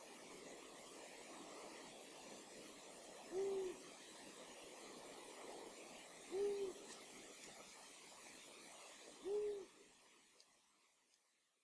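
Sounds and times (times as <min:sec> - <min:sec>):
background hiss: 0:00.0 - 0:11.2
long-eared owl hooting: 0:03.3 - 0:03.8, 0:06.3 - 0:06.9, 0:09.2 - 0:09.7.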